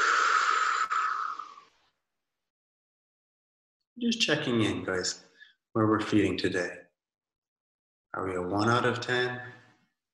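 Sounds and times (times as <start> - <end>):
slow exhale of breath during a guided breathing exercise: 0.0 - 1.9
speech: 4.0 - 6.8, 8.2 - 9.6.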